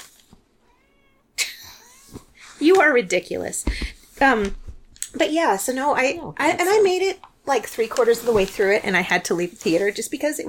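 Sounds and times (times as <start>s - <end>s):
cat meowing: 0.6s - 2.2s
speech: 2.6s - 4.6s, 5.2s - 10.4s.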